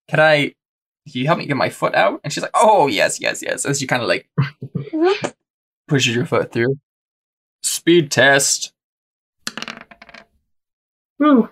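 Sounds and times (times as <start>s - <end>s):
speech: 0.1s - 5.3s, 5.9s - 6.9s, 7.6s - 8.8s, 11.2s - 11.4s
two dice rolling on a hard tabletop: 9.4s - 10.4s.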